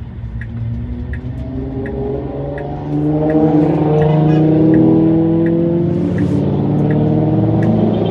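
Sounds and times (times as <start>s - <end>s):
faint regular ticking: 0.0s - 7.8s
line of cars driving past: 0.0s - 8.0s.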